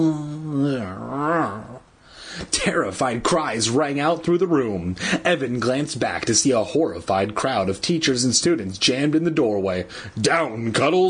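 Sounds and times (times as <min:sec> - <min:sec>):
speech: 0:00.0 - 0:01.6, 0:02.6 - 0:11.0
human voice imitating the growl of a giant angry hamster: 0:00.0 - 0:01.9.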